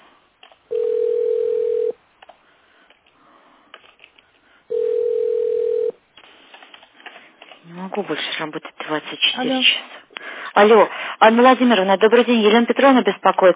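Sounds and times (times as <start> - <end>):
telephone ringback tone while a call goes unanswered: 0.7 - 2.0, 4.7 - 6.0
speech: 8.0 - 10.0, 10.6 - 13.5.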